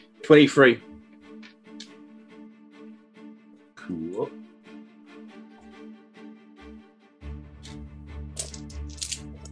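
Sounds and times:
speech: 0:00.3 - 0:00.9
dice rolling during a tabletop role-playing game: 0:08.4 - 0:09.4.

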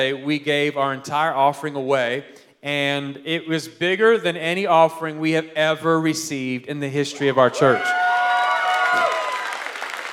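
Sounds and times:
speech: 0:00.0 - 0:08.1
person whooping: 0:07.2 - 0:09.7
audience clapping politely: 0:07.8 - 0:10.1.

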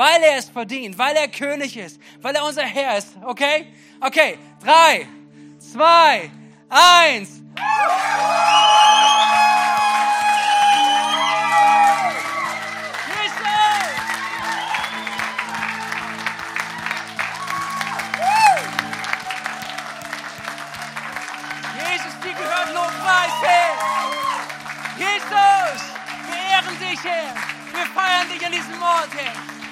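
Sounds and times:
speech: 0:00.0 - 0:09.8, 0:27.0 - 0:29.5
large crowd applauding with cheering whoops and shouts: 0:07.6 - 0:29.7.

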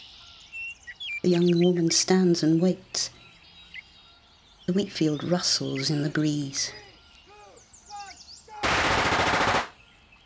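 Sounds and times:
birds chirping: 0:00.0 - 0:10.2
speech: 0:01.2 - 0:03.2, 0:04.7 - 0:06.8
rapid volley of gunshots cracking: 0:08.6 - 0:09.8.

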